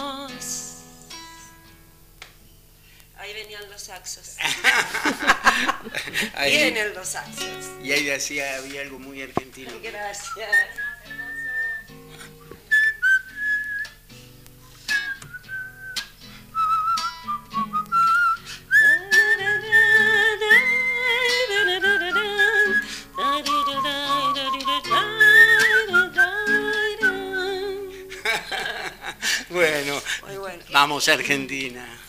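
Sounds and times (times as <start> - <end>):
speech: 4.0 - 4.6, 6.4 - 10.9, 30.3 - 32.0
laughter: 4.4 - 6.4, 28.1 - 29.5
whistled tango-like melody: 10.2 - 12.0, 12.7 - 14.0, 14.6 - 27.6.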